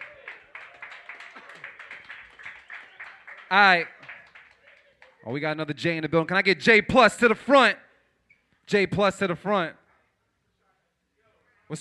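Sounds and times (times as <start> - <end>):
small crowd applause: 0.0 - 5.2
speech: 3.5 - 4.0, 5.2 - 7.8, 8.7 - 9.8.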